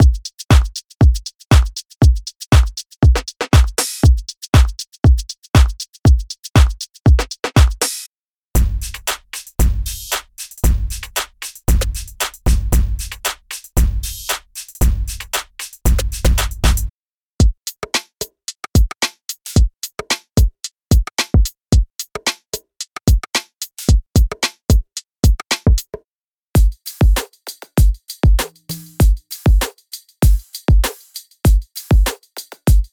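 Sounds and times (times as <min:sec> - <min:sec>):
future pop drum beat: 0:00.0 - 0:08.0, 0:08.6 - 0:26.0, 0:26.6 - 0:32.9.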